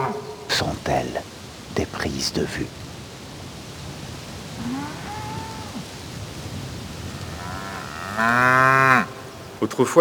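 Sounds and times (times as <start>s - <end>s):
outdoor noise: 0.0s - 9.9s
speech: 0.6s - 2.8s, 8.2s - 8.9s, 9.6s - 9.9s
cows mooing: 4.6s - 5.8s, 7.1s - 9.2s.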